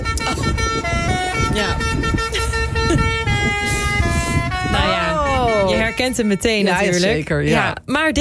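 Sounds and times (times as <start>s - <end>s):
novelty musical joke horn on a fire engine: 0.0s - 7.3s
rumbling engine and traffic noise: 0.0s - 8.1s
speech: 6.1s - 8.1s.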